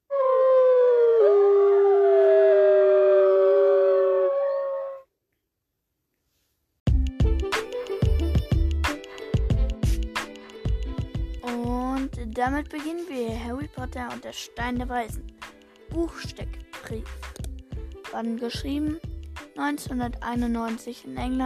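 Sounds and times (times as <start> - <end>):
wolf howling: 0.0 - 5.1
busy music with a beat: 6.9 - 21.4
speech: 12.4 - 15.3, 16.0 - 17.4, 18.1 - 21.4.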